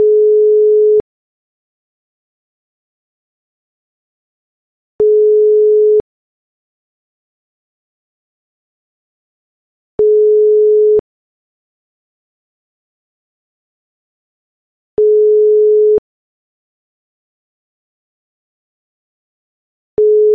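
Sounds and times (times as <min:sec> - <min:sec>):
European ETSI telephone ringback tone: 0:00.0 - 0:01.0, 0:05.0 - 0:06.0, 0:10.0 - 0:11.0, 0:15.0 - 0:16.0, 0:20.0 - 0:20.3.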